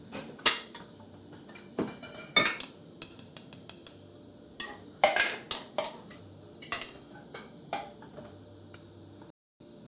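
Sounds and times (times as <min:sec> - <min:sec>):
warm kitchen atmosphere while baking: 0:00.0 - 0:09.9.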